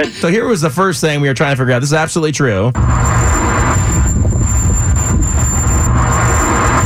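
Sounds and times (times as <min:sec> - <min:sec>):
speech: 0:00.0 - 0:03.9
car with car trouble driving down the street: 0:02.8 - 0:06.8
continuous high-pitched whine from a troubled car: 0:02.8 - 0:06.8.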